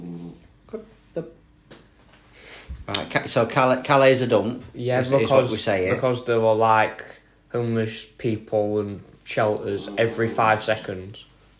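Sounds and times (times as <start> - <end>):
dog growling at a passerby: 0.0 - 0.4, 9.7 - 10.9
speech: 0.7 - 1.4, 2.9 - 11.3.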